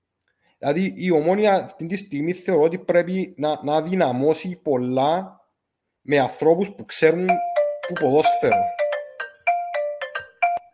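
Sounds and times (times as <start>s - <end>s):
speech: 0.6s - 5.4s, 6.0s - 8.8s
incoming call ringing on a computer: 7.3s - 10.7s.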